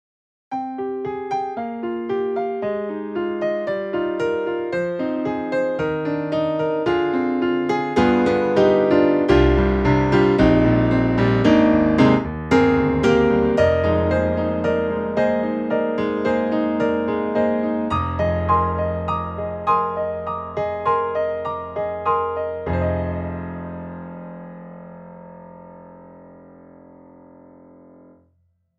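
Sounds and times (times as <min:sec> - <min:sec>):
Vienna grand piano: 0:00.5 - 0:28.2.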